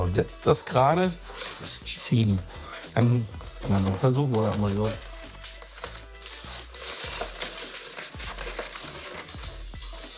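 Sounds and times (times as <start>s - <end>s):
speech: 0.1s - 5.1s
plastic film crackling and tearing while cut with a utility knife: 1.3s - 1.8s, 2.9s - 10.1s.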